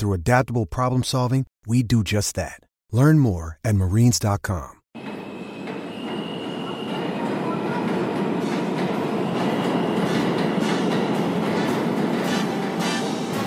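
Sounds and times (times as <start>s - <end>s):
speech: 0.0s - 4.8s
train rumbling on rails heard from inside the car: 5.0s - 13.4s.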